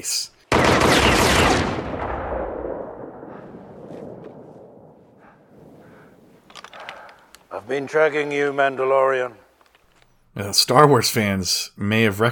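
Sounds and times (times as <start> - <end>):
speech: 0.0 - 1.0, 7.7 - 9.4, 10.4 - 12.3
gunfire aimed at a figure walking down rocks: 0.5 - 6.9.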